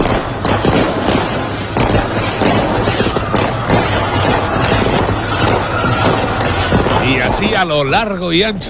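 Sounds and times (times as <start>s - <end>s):
fireworks exploding over Roquetas de Mar celebrating Spain winning the World Cup: 0.0s - 8.6s
speech: 7.4s - 8.6s.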